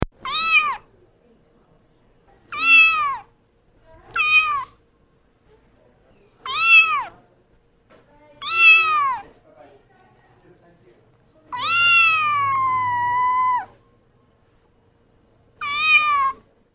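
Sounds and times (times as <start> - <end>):
kittens meowing: 0.2 - 0.9, 2.5 - 3.3, 4.1 - 4.8, 6.4 - 7.2, 8.4 - 9.3, 11.5 - 13.8, 15.6 - 16.5.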